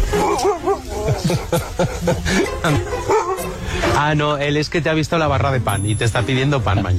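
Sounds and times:
9-year-old husky barking and yipping: 0.1 - 1.0, 2.8 - 3.6
laughter: 0.2 - 3.7
speech: 1.3 - 3.2, 3.8 - 6.9.

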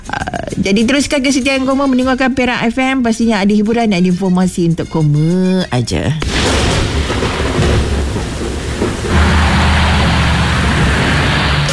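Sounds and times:
speech: 0.6 - 6.6
deep thunder rumbling during a thunderstorm: 6.2 - 11.7
steady rain during a thunderstorm: 6.2 - 11.7.

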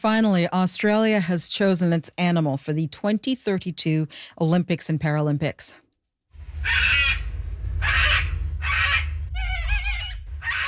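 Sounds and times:
speech: 0.0 - 5.8, 6.6 - 7.0
steady low rumble of noise: 6.4 - 10.6
cockatoo screeching harsh raspy calls: 6.6 - 10.6.

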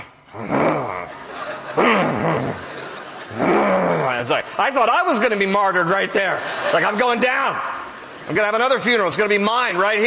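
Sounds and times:
voice imitating an angry crowd's growling murmur: 0.0 - 1.1, 3.3 - 4.2
speech: 0.3 - 0.6, 4.2 - 7.7, 8.3 - 10.0
laughter: 0.4 - 10.0.

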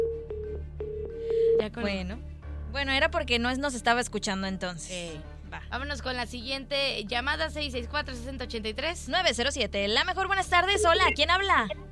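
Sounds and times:
telephone line tone after the caller has hung up: 0.0 - 1.6, 10.8 - 11.2
speech: 1.7 - 11.9.

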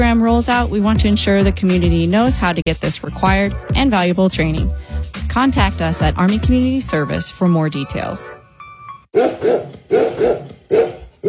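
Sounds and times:
speech: 0.0 - 8.4, 9.1 - 10.9
golden retrievers barking loudly with deep woofs: 9.1 - 11.2.

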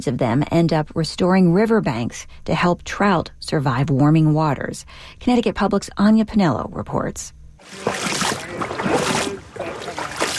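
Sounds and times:
speech: 0.0 - 9.2
person wading through a shallow river: 7.6 - 10.3.

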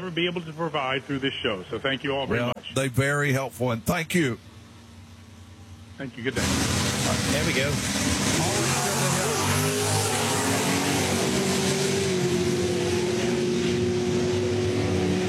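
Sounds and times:
speech: 0.0 - 4.5, 6.0 - 8.6
broad noise: 0.0 - 12.8
race car engines revving at a bracket racing event: 6.1 - 15.2.

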